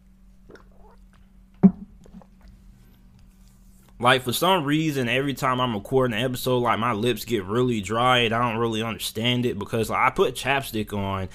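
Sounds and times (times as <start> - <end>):
steady low hum: 0.0 - 11.3
person drinking water: 0.5 - 2.8
speech: 4.0 - 11.3.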